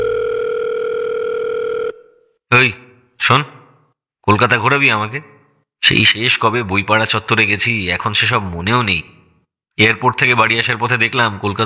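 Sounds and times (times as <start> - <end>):
telephone tone from a phone call being placed: 0.0 - 2.4
speech: 2.5 - 3.6, 4.3 - 9.2, 9.8 - 11.6.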